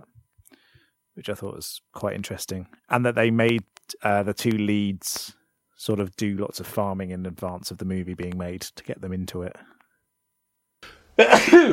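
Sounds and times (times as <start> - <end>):
speech: 1.2 - 9.7, 11.2 - 11.7
person sneezing loudly: 10.8 - 11.7.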